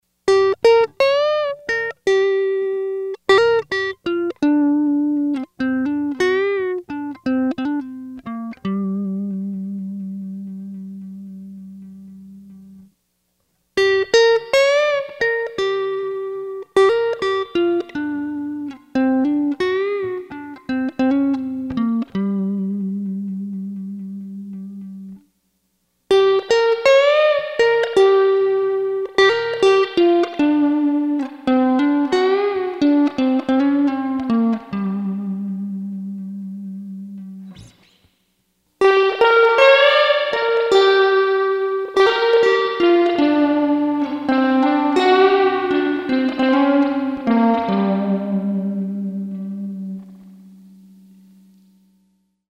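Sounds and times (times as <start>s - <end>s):
guitar with Bogen MPR 6: 0.0s - 52.4s.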